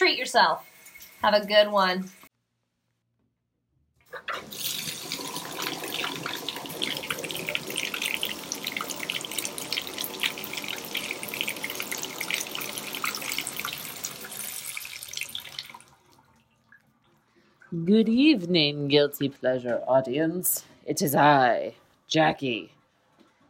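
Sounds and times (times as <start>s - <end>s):
water running from a shower: 0.0s - 2.3s, 4.1s - 18.4s
speech: 0.2s - 2.2s, 17.7s - 22.8s.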